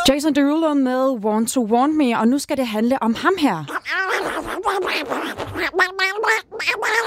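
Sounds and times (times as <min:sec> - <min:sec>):
speech: 0:00.1 - 0:07.0
person imitating a cartoon duck voice quacking: 0:03.6 - 0:07.0.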